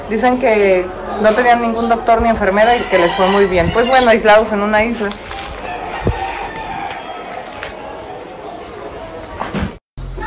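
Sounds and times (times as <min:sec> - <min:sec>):
faint murmuring voices: 0:00.0 - 0:09.6
speech: 0:00.1 - 0:05.4
fighting rooster crowing: 0:02.6 - 0:04.1, 0:05.4 - 0:08.3.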